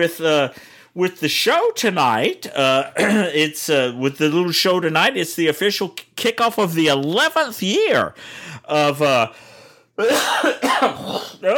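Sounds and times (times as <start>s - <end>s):
speech: 0.0s - 11.5s
person coughing up phlegm: 2.8s - 3.5s, 10.0s - 11.5s.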